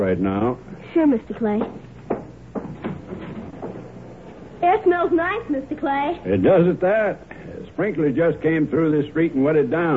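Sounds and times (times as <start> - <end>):
speech: 0.0 - 1.8, 4.6 - 9.9
front door being opened in the warm evening: 2.6 - 4.5.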